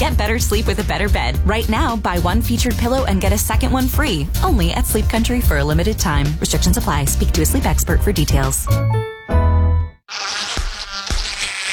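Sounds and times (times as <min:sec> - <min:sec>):
speech: 0:00.2 - 0:09.1
hissing spray: 0:10.1 - 0:11.7
mosquito buzzing: 0:10.1 - 0:11.7.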